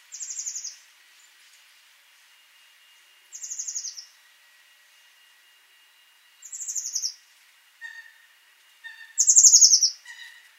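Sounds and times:
Eurasian blue tit Cyanistes caeruleus buzzy churring calls: 0.1s - 0.7s, 3.3s - 4.1s, 6.4s - 7.2s, 7.8s - 8.3s, 8.9s - 10.5s.

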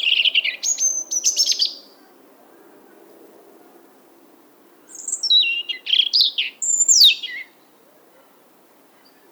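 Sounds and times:
European robin Erithacus rubecula singing: 0.0s - 2.0s, 4.9s - 7.6s.

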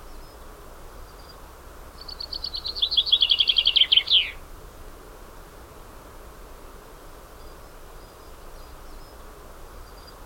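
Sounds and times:
faint background hiss: 0.0s - 10.2s
Common chaffinch (Fringilla coelebs) singing: 2.0s - 4.4s.

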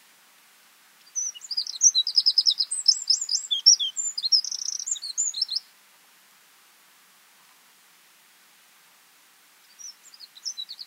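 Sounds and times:
Eurasian wren Troglodytes troglodytes song of chipping notes and trills: 1.0s - 5.7s, 9.6s - 10.8s.

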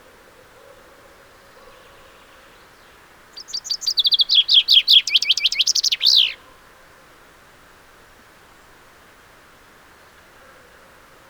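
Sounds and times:
common chaffinch Fringilla coelebs song: 3.3s - 6.4s.

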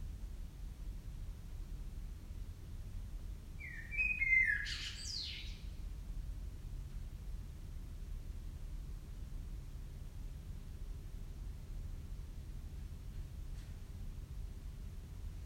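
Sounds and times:
low background rumble: 0.0s - 15.4s
common blackbird Turdus merula call: 3.6s - 5.6s.

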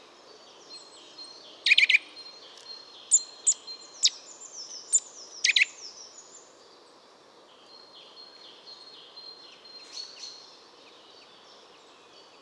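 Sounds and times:
Sitta europaea Eurasian nuthatch calling: 1.7s - 2.0s, 3.1s - 4.2s, 4.9s - 5.8s.

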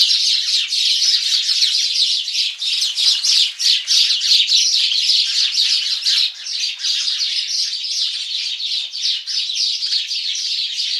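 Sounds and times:
House sparrows Passer domesticus chirping: 0.0s - 10.9s.

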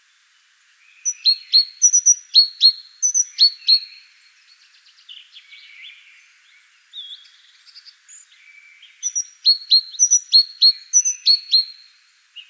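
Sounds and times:
soft twittering notes of great tit: 0.8s - 12.4s
great tit Parus major song of bright high two-note phrases: 1.0s - 3.8s, 9.0s - 11.6s.

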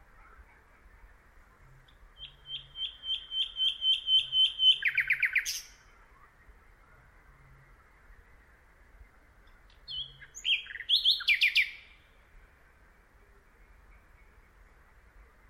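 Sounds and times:
Luscinia megarhynchos common nightingale song: 0.0s - 15.4s.

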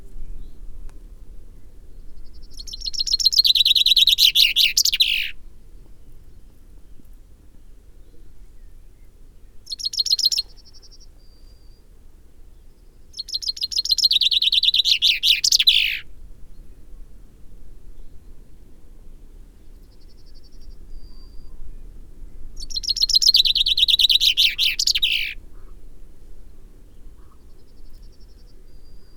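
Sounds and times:
common chaffinch singing: 2.3s - 5.4s, 9.7s - 11.7s, 13.2s - 16.1s, 22.6s - 25.4s.

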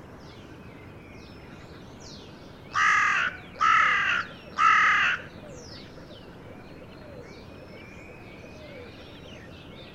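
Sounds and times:
Carrion crow Corvus corone hoarse cawing: 2.7s - 5.3s.

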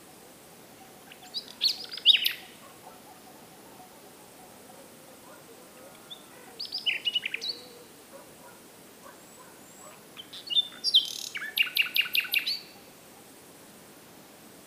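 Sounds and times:
common nightingale Luscinia megarhynchos singing: 0.8s - 8.2s, 9.0s - 12.9s.

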